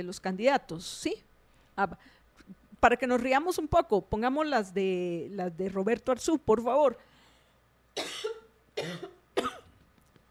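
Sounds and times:
speech: 0.0 - 7.1, 8.0 - 9.5
person coughing after sipping strong ginger tea: 8.0 - 9.8.

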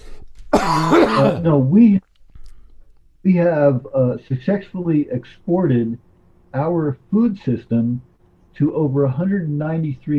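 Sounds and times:
short cough: 0.6 - 1.5
throat clearing: 0.6 - 1.8
speech: 0.7 - 2.1, 3.2 - 10.1.

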